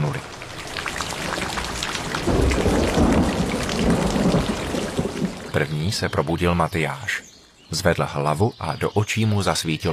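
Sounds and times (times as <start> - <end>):
heavy rain drumming on the remains of a roof during a thunderstorm: 0.0 - 5.9
deep thunder rumbling: 0.5 - 5.7
speech: 5.6 - 9.9.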